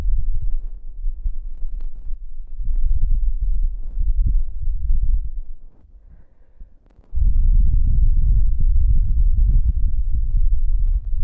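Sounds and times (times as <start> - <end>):
faint light rustles: 0.0 - 11.2
breathing: 5.9 - 7.1.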